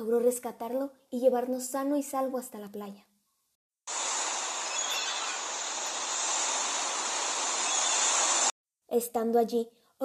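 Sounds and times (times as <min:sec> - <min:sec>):
speech: 0:00.0 - 0:03.1, 0:08.9 - 0:10.0
stormy sea churning water tossing a ship: 0:03.9 - 0:08.5.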